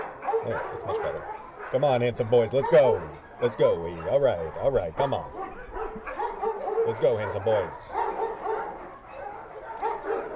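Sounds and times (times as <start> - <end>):
several dogs barking and yipping: 0.0 - 10.3
speech: 0.4 - 6.1, 6.9 - 8.0.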